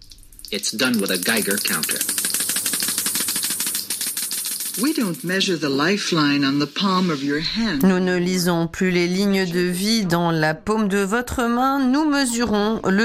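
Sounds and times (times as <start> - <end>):
Geiger counter clicking: 0.0 - 5.5
speech: 0.5 - 2.2, 4.8 - 13.0.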